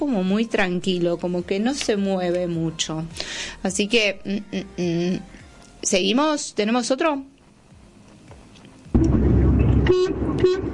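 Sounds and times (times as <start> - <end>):
speech: 0.0 - 7.3, 9.9 - 10.7
bright tonal horn blast: 9.0 - 10.7
car horn honking: 9.8 - 10.7.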